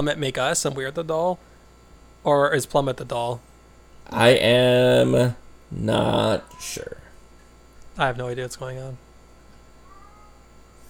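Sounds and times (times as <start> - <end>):
speech: 0.0 - 1.5, 2.2 - 3.5, 4.1 - 7.0, 8.0 - 9.0
faint short cat meow: 9.8 - 10.5.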